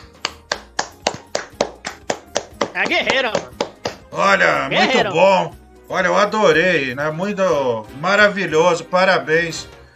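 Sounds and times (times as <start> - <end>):
single person applauding with sharp hand claps: 0.0 - 4.3
speech: 2.8 - 9.8.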